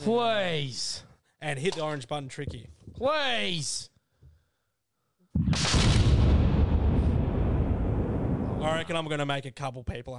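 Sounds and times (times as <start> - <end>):
speech: 0.0 - 3.9, 8.6 - 10.1
cannon blast sound effect: 5.4 - 8.9.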